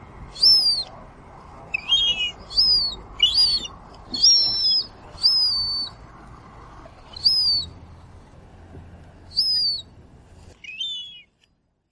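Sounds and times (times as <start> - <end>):
low steady rumble: 0.0 - 11.9
gull giving descending cries in a harbor: 0.4 - 0.9, 1.8 - 6.0, 7.1 - 7.7, 9.4 - 9.8, 10.6 - 11.3.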